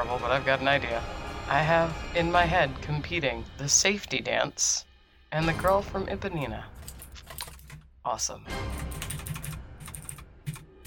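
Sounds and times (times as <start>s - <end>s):
speech: 0.0s - 6.7s, 8.0s - 9.0s
rapid forceful typing on a computer keyboard: 6.8s - 7.9s, 8.7s - 10.8s.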